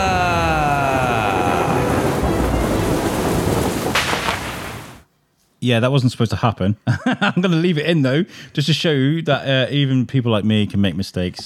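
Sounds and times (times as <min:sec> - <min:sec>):
loud continuous rumbling thunder sound effect: 0:00.0 - 0:05.0
brief sharp crackle of a storm: 0:00.0 - 0:05.1
steady heavy rain sound effect: 0:00.0 - 0:05.1
speech: 0:05.6 - 0:11.4.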